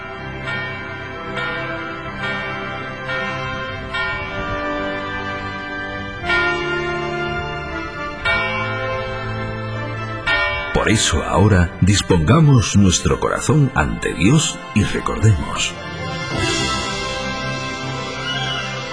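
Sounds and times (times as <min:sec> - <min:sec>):
church bell tolling the hour: 0:00.0 - 0:18.9
speech: 0:10.8 - 0:16.8.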